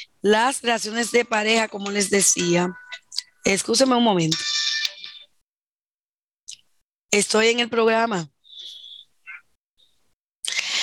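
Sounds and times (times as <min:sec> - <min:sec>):
speech: 0:00.0 - 0:04.5, 0:07.1 - 0:08.4
mobile phone ringtone: 0:00.8 - 0:03.2, 0:04.3 - 0:05.3.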